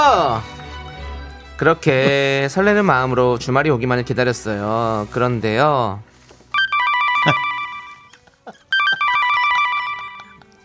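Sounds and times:
speech: 0.0 - 0.6, 1.6 - 6.1, 7.2 - 7.5
phone ringing with bright trilling electronic tones: 6.5 - 10.4.

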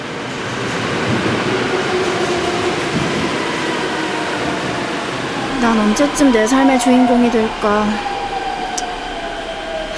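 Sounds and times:
subway train in motion rumbling: 0.0 - 9.9
high whine: 5.1 - 9.9
speech: 5.6 - 8.1.

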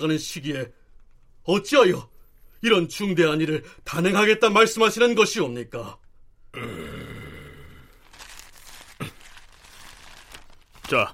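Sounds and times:
speech: 0.0 - 0.8, 1.5 - 6.0, 10.9 - 11.1
small sheet of paper with a written message being crinkled: 8.0 - 11.1.

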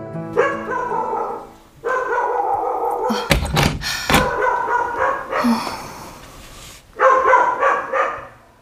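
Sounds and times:
white dog barking and yelping: 0.4 - 3.1, 4.3 - 5.6, 7.0 - 8.6
heavy thud: 3.1 - 4.5.

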